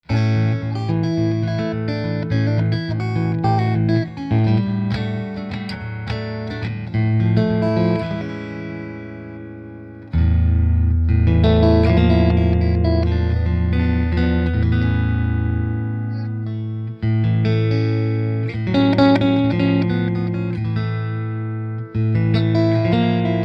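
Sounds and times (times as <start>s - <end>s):
clean bass amp tone: 0.1s - 23.4s.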